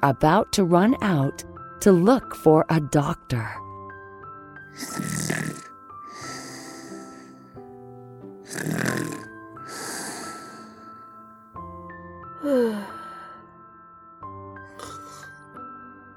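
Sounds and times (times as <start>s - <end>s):
speech: 0.0s - 3.6s, 4.8s - 5.6s, 8.5s - 9.3s, 12.4s - 13.0s
soft musical backdrop: 0.0s - 16.1s
loud rasping snoring: 4.8s - 7.4s, 8.4s - 11.0s, 14.7s - 15.3s.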